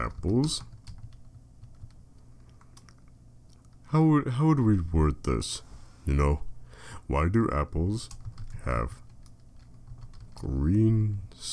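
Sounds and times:
speech: 0.0 - 0.7, 3.9 - 9.0, 10.4 - 11.5
person typing a web search on a computer keyboard: 0.0 - 3.8, 8.0 - 10.6
low steady hum: 0.0 - 11.5.

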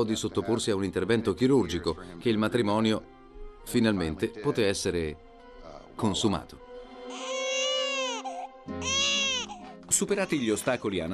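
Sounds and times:
speech: 0.0 - 5.3, 6.0 - 7.3, 9.9 - 11.1
newborn baby crying: 7.0 - 11.1.

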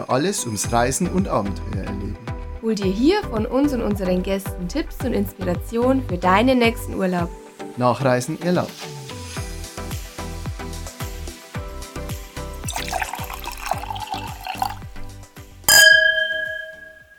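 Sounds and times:
speech: 0.0 - 9.0
white wine poured from a Bocksbeutel bottle: 12.6 - 15.0, 15.7 - 17.1
bright ringing glassy hit: 15.7 - 17.1.

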